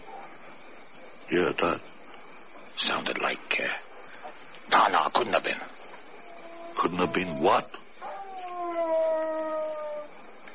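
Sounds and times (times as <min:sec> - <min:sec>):
speech: 0:01.3 - 0:02.0, 0:02.8 - 0:03.9, 0:04.7 - 0:05.8, 0:06.8 - 0:07.8
wolf howling: 0:06.3 - 0:10.2.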